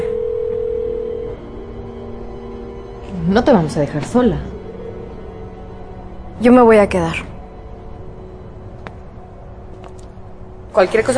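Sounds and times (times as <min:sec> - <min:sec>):
telephone ringback tone on an unanswered call: 0:00.0 - 0:01.5
speech: 0:03.3 - 0:04.5, 0:06.4 - 0:07.3, 0:10.8 - 0:11.1.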